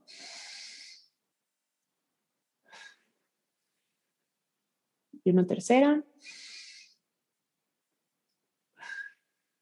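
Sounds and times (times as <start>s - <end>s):
deep inhale through the nose during a guided breathing exercise: 0.0s - 1.1s, 6.2s - 7.0s
exhale through the mouth during a guided breathing exercise: 0.0s - 1.1s, 6.2s - 7.0s
speech: 5.3s - 6.4s.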